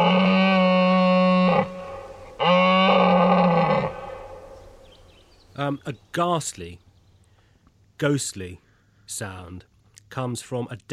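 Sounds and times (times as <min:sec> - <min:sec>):
red deer stag rutting roar: 0:00.0 - 0:04.8
speech: 0:05.7 - 0:06.9, 0:08.0 - 0:10.9.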